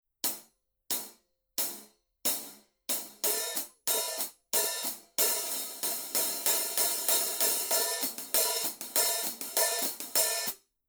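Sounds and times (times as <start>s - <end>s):
black hi-hat: 2.4s - 10.6s.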